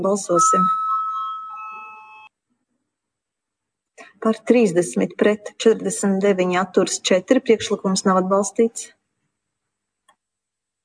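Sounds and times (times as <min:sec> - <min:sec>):
speech: 0:00.0 - 0:00.8, 0:04.2 - 0:09.0
electric bell in a parliamentary chamber calling members to a vote: 0:00.2 - 0:02.3.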